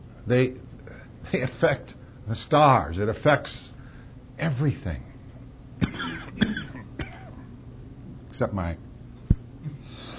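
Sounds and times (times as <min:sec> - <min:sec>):
speech: 0:00.3 - 0:03.8, 0:04.4 - 0:05.1, 0:08.4 - 0:08.8
person coughing: 0:05.8 - 0:07.5
throat clearing: 0:05.8 - 0:07.5.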